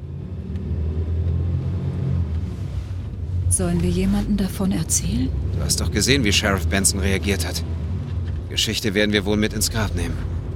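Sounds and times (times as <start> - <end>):
car engine starting and rumbling as the car drives off: 0.0 - 10.5
speech: 3.6 - 7.8, 8.5 - 10.3.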